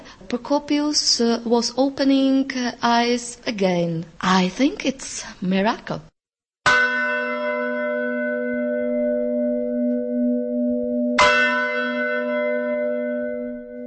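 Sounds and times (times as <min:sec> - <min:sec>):
speech: 0:00.3 - 0:06.1
deep resonant church bell strikes from a Gothic bell tower: 0:06.7 - 0:13.8.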